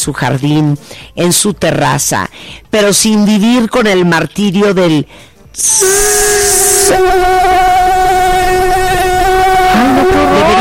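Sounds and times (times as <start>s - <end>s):
speech: 0.0s - 7.9s
mosquito buzzing: 5.6s - 10.5s.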